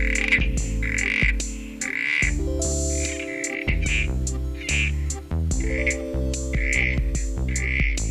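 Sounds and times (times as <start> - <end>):
southern corroboree frog croaking: 0.0 - 2.3, 2.9 - 5.2, 6.6 - 8.0
musical backing: 0.0 - 8.0.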